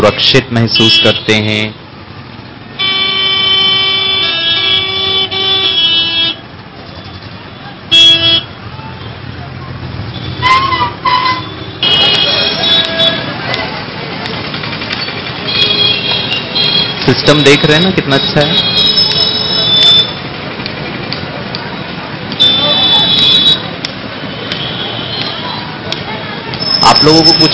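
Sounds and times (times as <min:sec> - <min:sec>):
speech: 0:00.0 - 0:01.8, 0:17.1 - 0:18.9, 0:27.0 - 0:27.5
steady engine rumble of dense road traffic: 0:00.0 - 0:27.5
car horns honking in dense road traffic: 0:00.7 - 0:01.8, 0:02.8 - 0:09.3, 0:10.0 - 0:13.4, 0:15.4 - 0:20.3, 0:22.3 - 0:25.7.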